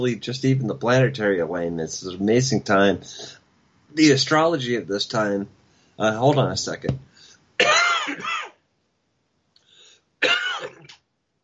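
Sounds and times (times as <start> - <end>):
speech: 0.0 - 7.1
person coughing: 7.6 - 8.6, 10.2 - 11.0.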